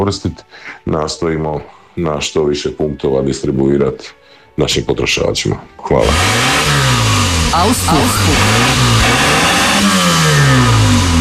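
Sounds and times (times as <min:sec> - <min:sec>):
speech: 0:00.0 - 0:10.0
car engine revving through its exhaust: 0:06.0 - 0:11.1.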